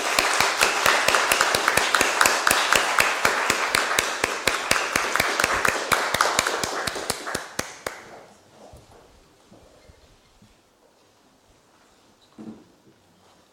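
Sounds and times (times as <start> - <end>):
people clapping at a city council meeting: 0.0 - 8.3.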